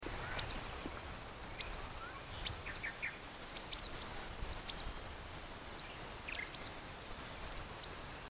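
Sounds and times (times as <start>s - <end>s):
yellow wagtail calling at Kitanglad: 0.0s - 8.2s.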